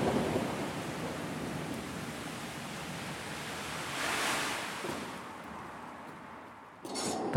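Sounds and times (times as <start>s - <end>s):
rumbling thunder: 0.0s - 3.2s
rain-like hiss of a thunderstorm: 0.0s - 7.3s.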